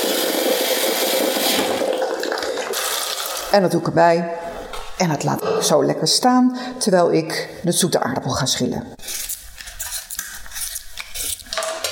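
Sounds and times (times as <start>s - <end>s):
boiling water pouring into a pan of spiced soup: 0.0s - 3.6s
speech: 3.5s - 4.4s, 5.0s - 9.2s.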